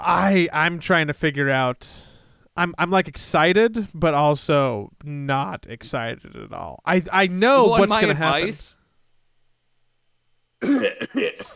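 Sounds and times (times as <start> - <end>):
speech: 0.0 - 8.8, 10.6 - 11.5
person coughing: 10.6 - 11.5.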